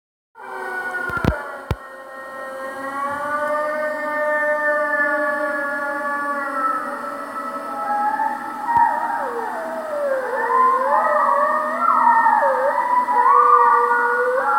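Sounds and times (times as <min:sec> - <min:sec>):
wolf howling: 0:02.7 - 0:14.5.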